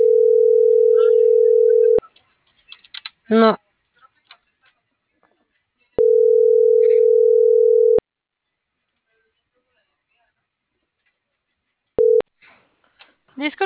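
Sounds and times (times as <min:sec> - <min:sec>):
telephone beep after a dropped call: 0:00.0 - 0:02.0, 0:06.0 - 0:08.0, 0:12.0 - 0:12.2
speech: 0:03.3 - 0:03.6, 0:13.4 - 0:13.6.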